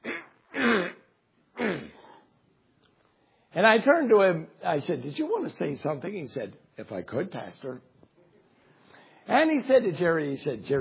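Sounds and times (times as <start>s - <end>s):
voice imitating a man with a cold clearing his throat: 0.0s - 2.2s
speech: 3.6s - 7.9s, 9.3s - 10.7s.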